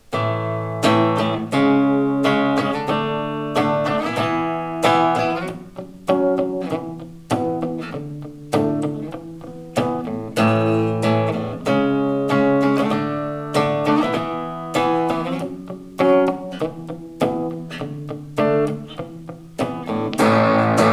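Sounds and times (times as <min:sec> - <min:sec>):
distortion: 0:00.0 - 0:20.9.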